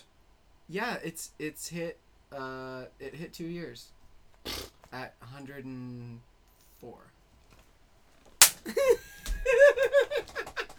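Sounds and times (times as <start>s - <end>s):
speech: 0.7s - 7.2s, 8.6s - 9.0s
hand slap from a high five: 8.4s - 8.7s
people laughing: 8.7s - 10.7s.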